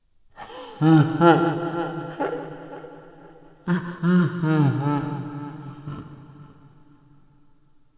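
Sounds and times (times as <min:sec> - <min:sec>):
girl laughing and giggling: 0:00.4 - 0:06.1.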